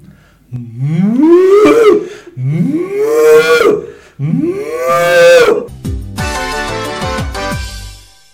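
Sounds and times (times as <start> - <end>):
cow mooing: 0.7 - 5.7.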